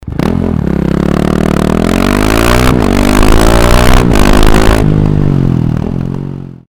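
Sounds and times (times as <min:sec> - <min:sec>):
KTM 690 SMC R motorcycle engine without dB killer: 0:00.0 - 0:06.6.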